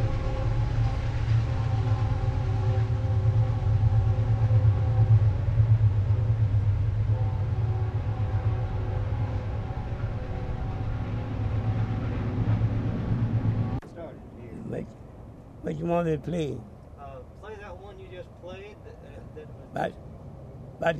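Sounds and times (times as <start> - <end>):
sustained droning whistle-like tone: 0.0 - 13.8
train running past with loud rumbling: 0.0 - 20.9
speech: 15.8 - 16.7, 19.8 - 20.0, 20.8 - 20.9.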